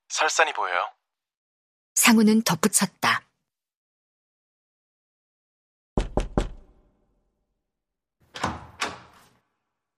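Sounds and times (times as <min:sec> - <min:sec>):
speech: 0:00.1 - 0:01.0, 0:02.0 - 0:03.3
knocking on a hotel room door: 0:06.0 - 0:06.8.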